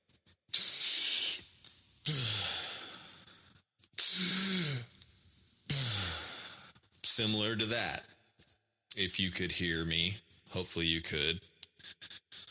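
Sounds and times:
deep breathing during a breathing exercise: 2.0s - 6.8s
speech: 7.2s - 8.1s, 9.0s - 11.5s.

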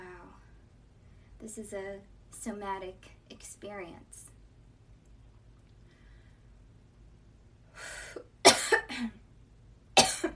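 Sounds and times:
speech: 1.4s - 4.3s
person coughing harshly: 8.2s - 9.2s, 10.0s - 10.3s.

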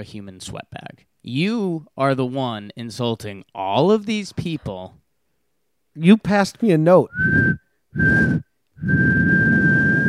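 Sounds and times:
speech: 0.0s - 5.0s, 6.0s - 9.3s
breathy whistling at one flat pitch: 7.1s - 10.0s.

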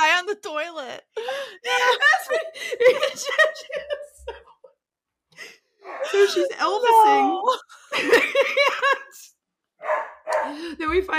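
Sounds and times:
laughter: 1.2s - 4.8s, 5.4s - 9.3s
speech: 6.3s - 7.6s
dogs barking loudly: 9.8s - 10.6s.

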